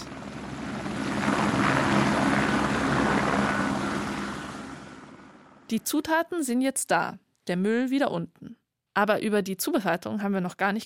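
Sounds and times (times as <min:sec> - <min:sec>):
helicopter flying past with rotor chop and engine roar: 0:00.0 - 0:05.8
speech: 0:05.7 - 0:10.8.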